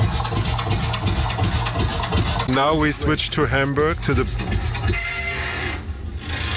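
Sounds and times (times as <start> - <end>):
low rumble: 0.0 - 6.3
speech: 2.6 - 4.6
bridge in Hamburg squealing: 4.0 - 6.5
faint high whining tones: 4.1 - 6.5.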